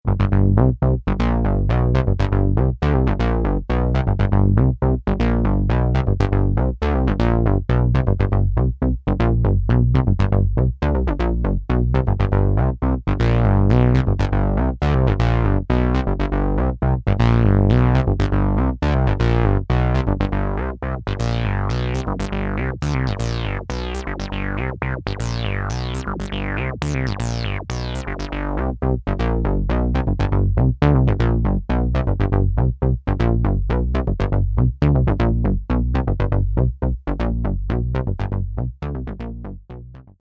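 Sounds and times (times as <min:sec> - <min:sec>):
sequenced bass: 0:00.0 - 0:40.2.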